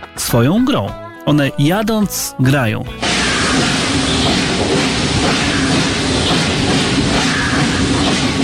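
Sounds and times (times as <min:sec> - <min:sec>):
speech: 0:00.2 - 0:03.8
steam locomotive rolling along the rails: 0:03.0 - 0:08.4.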